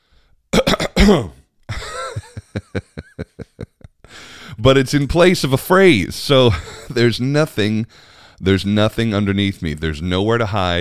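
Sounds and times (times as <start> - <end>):
person coughing: 0.5 - 2.6
speech: 1.0 - 1.8, 2.6 - 3.3, 4.6 - 10.7
laughter: 1.7 - 3.9.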